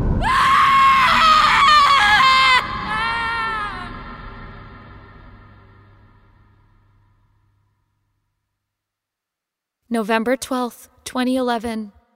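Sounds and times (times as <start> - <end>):
person screaming in terror: 0.2 - 5.7
speech: 9.9 - 12.0.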